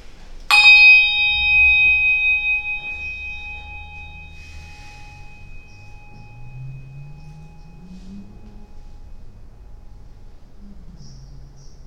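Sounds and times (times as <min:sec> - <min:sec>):
single bell struck and ringing: 0:00.5 - 0:09.2.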